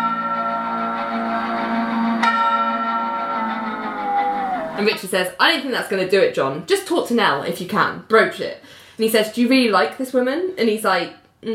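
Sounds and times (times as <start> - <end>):
bells ringing: 0.0 - 4.9
speech: 4.8 - 11.5.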